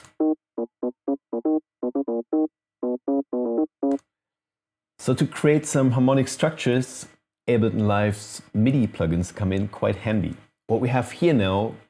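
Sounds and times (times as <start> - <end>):
staccato bassline doubled by an organ tone an octave higher: 0.0 - 4.0
speech: 5.0 - 11.8.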